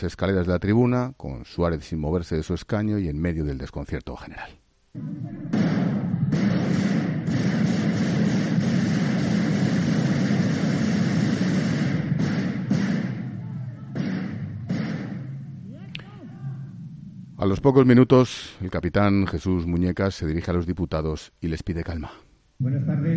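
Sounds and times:
speech: 0.0 - 5.7, 17.4 - 23.1
raised voices amid commotion in a large hall: 5.0 - 6.4, 15.6 - 17.7
gunfire bursts shot at the ceiling of the Congress chamber: 5.0 - 16.3.

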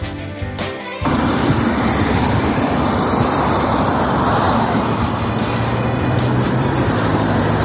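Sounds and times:
heavy motorway traffic of passing cars: 0.8 - 7.6.

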